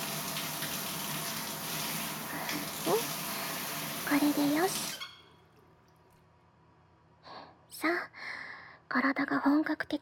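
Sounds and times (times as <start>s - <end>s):
shower water spraying and rinsing soap foam off a body: 0.0s - 5.1s
speech: 4.1s - 5.0s, 9.0s - 10.0s.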